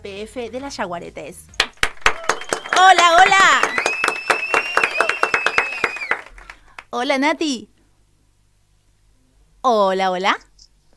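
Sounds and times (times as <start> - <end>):
speech: 0.0 - 1.7, 2.8 - 3.8, 6.9 - 7.7, 9.6 - 10.4
studio applause welcoming a guest on a radio programme: 1.6 - 6.9
thin high whistle-like tone: 3.6 - 6.3.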